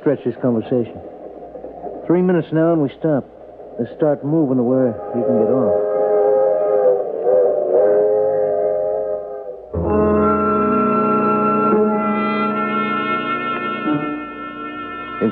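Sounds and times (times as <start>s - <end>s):
speech: 0.0s - 1.1s, 2.1s - 5.9s
train whistle blowing: 4.8s - 15.3s.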